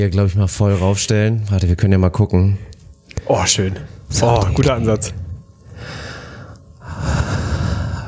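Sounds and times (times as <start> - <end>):
speech: 0.0 - 5.2
slow calm ASMR-style breathing into microphone: 5.6 - 8.0.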